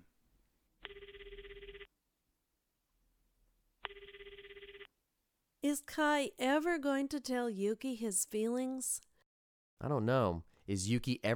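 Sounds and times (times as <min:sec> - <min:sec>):
cell phone ringing with rapid trilling pulse: 0:00.8 - 0:01.9, 0:03.8 - 0:04.9
speech: 0:05.6 - 0:09.1, 0:09.8 - 0:11.3.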